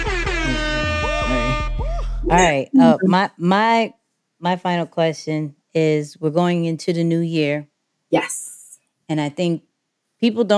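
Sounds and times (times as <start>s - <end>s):
air horn blaring: 0.0s - 1.8s
speech: 2.3s - 8.4s, 9.1s - 10.5s.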